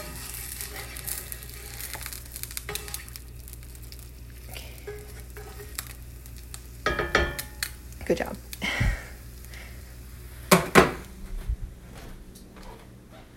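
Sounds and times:
spatula scraping and clattering as an egg is flipped: 0.0s - 3.2s, 4.8s - 6.0s
egg frying in a pan: 0.0s - 11.0s
speech: 8.1s - 8.5s.

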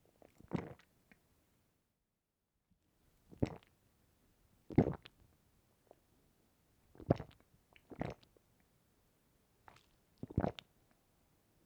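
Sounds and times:
person swallowing and gulping: 0.5s - 0.8s, 3.4s - 3.7s, 7.0s - 8.2s.

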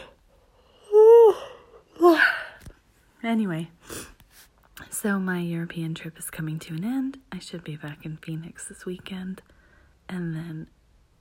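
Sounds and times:
person yawning: 0.8s - 2.6s
speech: 3.2s - 3.8s, 5.0s - 10.8s.

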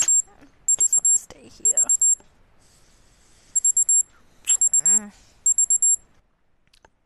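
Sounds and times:
morning wake-up alarm clock beeping: 0.0s - 2.2s, 3.6s - 6.0s.

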